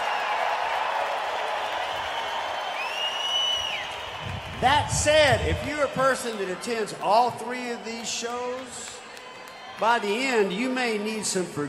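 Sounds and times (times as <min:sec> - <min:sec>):
large concert crowd in Boston clapping and cheering: 0:00.0 - 0:11.6
shrill whistle from the crowd: 0:01.7 - 0:04.3
speech: 0:04.6 - 0:09.0, 0:09.8 - 0:11.6.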